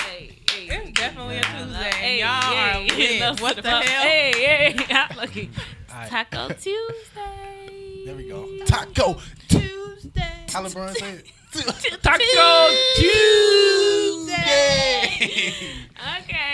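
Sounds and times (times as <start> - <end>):
people clapping hands: 0.0 - 5.2
people singing excitedly: 0.0 - 10.8, 12.0 - 15.6
laughter: 0.7 - 7.2, 14.2 - 15.8
speech: 0.7 - 9.9, 10.5 - 16.5.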